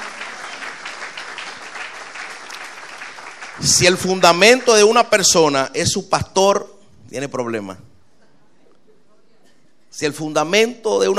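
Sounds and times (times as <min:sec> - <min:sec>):
church congregation applauding during a sermon: 0:00.0 - 0:05.3
speech: 0:03.6 - 0:07.9, 0:10.0 - 0:11.1.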